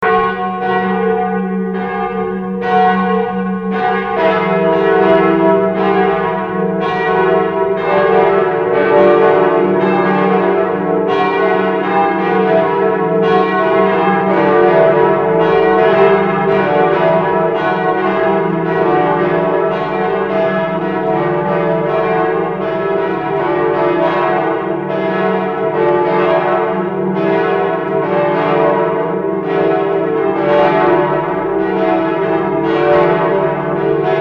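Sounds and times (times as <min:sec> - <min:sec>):
church bells of St Martinus in Kirchherten ringing: 0:00.0 - 0:34.1.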